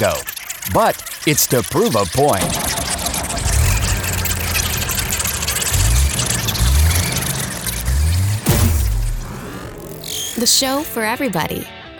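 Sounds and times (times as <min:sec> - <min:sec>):
speech: 0:00.0 - 0:02.9, 0:10.4 - 0:11.8
Winnebago motorhome engine running: 0:02.2 - 0:10.0.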